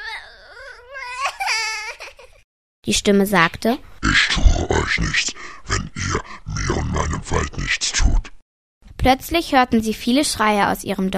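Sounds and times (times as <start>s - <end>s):
four-year-old child crying in fear: 0.0s - 2.4s
speech: 2.9s - 6.2s, 7.2s - 8.3s, 9.0s - 11.1s.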